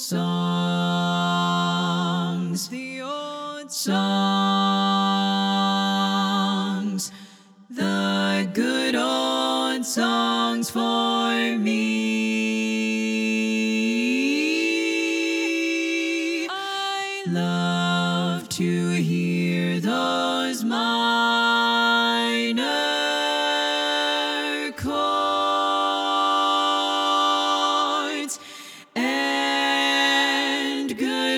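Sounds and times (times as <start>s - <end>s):
bass part of SSAA choir singing: 0.1s - 31.3s.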